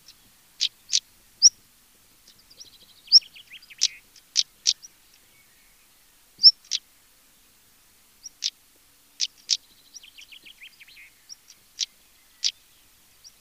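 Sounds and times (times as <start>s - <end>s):
European stonechat calling: 0.0s - 1.6s, 2.2s - 6.9s, 8.2s - 8.6s, 9.2s - 13.3s.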